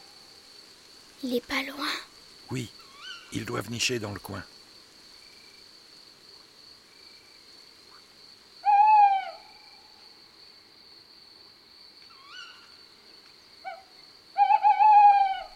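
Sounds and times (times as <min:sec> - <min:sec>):
steady high insect trill: 0:00.0 - 0:15.5
speech: 0:01.2 - 0:04.6
male tawny owl giving two-part hooting call: 0:02.8 - 0:03.3, 0:08.6 - 0:09.8, 0:12.1 - 0:12.7, 0:13.6 - 0:15.5.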